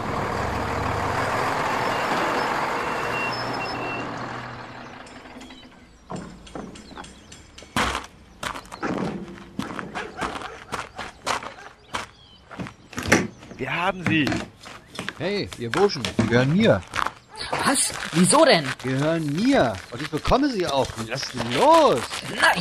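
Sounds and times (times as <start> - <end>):
heavy truck engine rumbling: 0.0 - 22.5
metallic clanks: 4.2 - 10.0
footsteps: 6.1 - 22.5
speech: 13.8 - 14.5, 15.2 - 17.0, 17.7 - 22.5.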